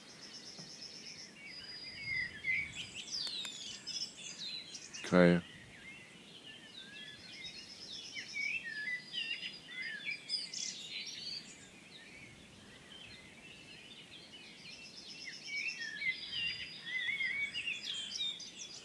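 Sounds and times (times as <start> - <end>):
great tit singing repeated notes: 0.1 - 18.8
brief spoken word: 5.0 - 5.4
speech: 5.1 - 5.5.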